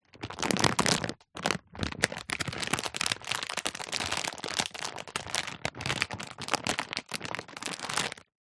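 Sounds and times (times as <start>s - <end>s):
thick plastic packet crumpled and handled: 0.0s - 8.3s.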